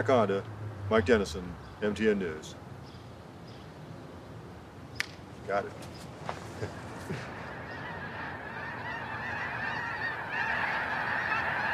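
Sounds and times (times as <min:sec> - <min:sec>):
speech: 0:00.0 - 0:02.6, 0:05.5 - 0:07.3
flock of snow geese honking on the waters of the Berkeley Pit: 0:06.5 - 0:11.7.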